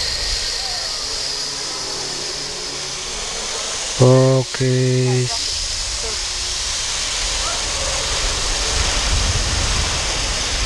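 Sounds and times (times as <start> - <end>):
steady broadband hiss: 0.0 - 10.6
brief harmonic voice-like tone: 4.0 - 5.4
speech: 4.0 - 5.5.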